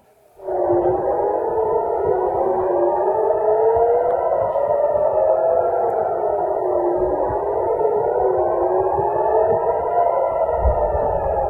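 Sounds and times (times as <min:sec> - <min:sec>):
air raid sirens wailing warning of incoming missiles: 0:00.2 - 0:11.4.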